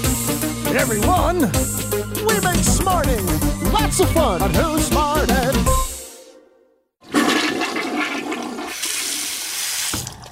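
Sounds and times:
speech: 0.7s - 5.8s
toilet flushing: 7.0s - 10.3s.

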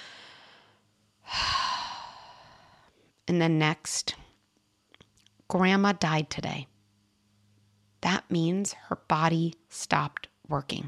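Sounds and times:
deep human breath inhale and sighing exhale: 0.0s - 3.2s
speech: 3.3s - 4.2s, 5.5s - 6.7s, 8.0s - 10.8s.

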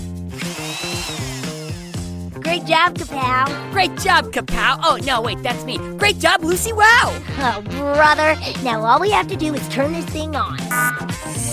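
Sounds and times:
power drill whirring: 0.3s - 2.2s
speech: 2.5s - 10.9s.

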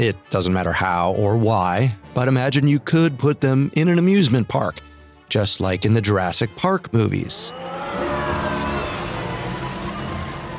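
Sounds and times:
speech: 0.0s - 8.4s
jeep engine revving: 7.5s - 10.5s.

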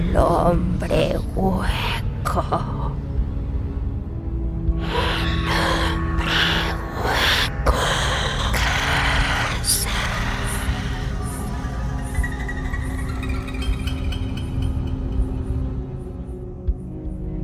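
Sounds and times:
low steady rumbling background: 0.0s - 17.4s
speech: 0.1s - 3.0s
woman waking with a sharp loud gasp or cry: 4.8s - 11.6s.

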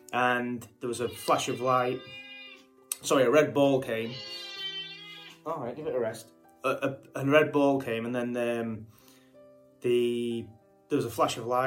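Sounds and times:
speech: 0.1s - 2.2s, 3.0s - 4.5s, 5.5s - 9.0s, 9.8s - 11.6s
cat meowing: 1.0s - 2.7s, 4.0s - 5.5s.

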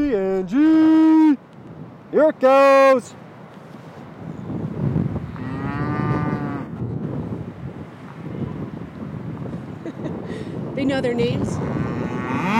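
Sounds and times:
steady wind rumble: 0.0s - 2.2s, 3.2s - 12.5s
speech: 2.1s - 3.2s, 10.8s - 11.8s
Scottish Highland cattle mooing in response to a person's call: 5.3s - 6.8s, 11.5s - 12.5s.

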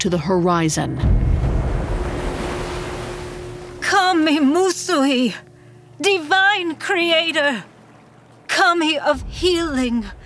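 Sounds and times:
speech: 0.0s - 1.5s, 4.0s - 7.7s, 8.5s - 10.2s
wind: 0.9s - 10.2s
ocean surf breaking on a shoreline: 1.2s - 6.0s, 6.8s - 9.3s.

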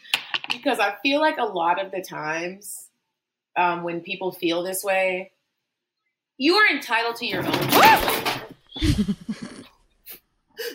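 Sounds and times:
speech: 0.6s - 2.9s, 3.6s - 5.4s, 6.4s - 8.2s, 8.8s - 9.4s
painting crashing down from a wall: 7.3s - 8.6s.

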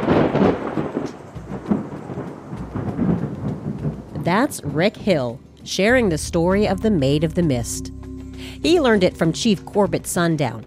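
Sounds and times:
deep rolling thunder with booms: 0.0s - 5.0s
faint hiss of rain: 0.0s - 6.5s
speech: 4.3s - 10.6s.

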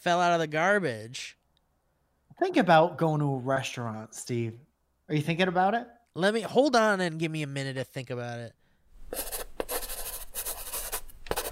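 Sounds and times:
speech: 0.0s - 1.4s, 2.4s - 9.5s
pencil scratching across paper: 9.1s - 11.5s.

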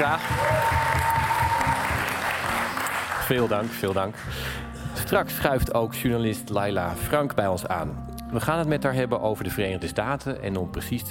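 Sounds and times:
speech: 0.0s - 0.6s, 3.3s - 11.0s
live audience applauding during a live recording: 0.0s - 4.4s.

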